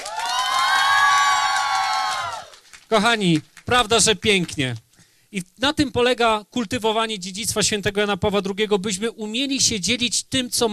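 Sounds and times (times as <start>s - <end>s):
large crowd cheering and whooping: 0.0s - 2.8s
speech: 2.9s - 10.7s.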